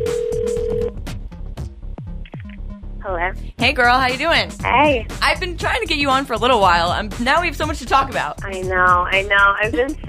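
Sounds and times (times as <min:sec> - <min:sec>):
steady electronic phone tone while placing a call: 0:00.0 - 0:00.9
speech: 0:03.1 - 0:10.0.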